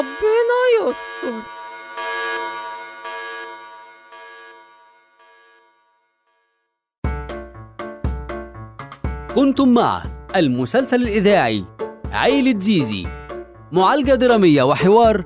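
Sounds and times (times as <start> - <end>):
speech: 0.0 - 1.6, 9.4 - 15.2
laboratory alarm buzzing horn-like blasts: 0.0 - 5.8.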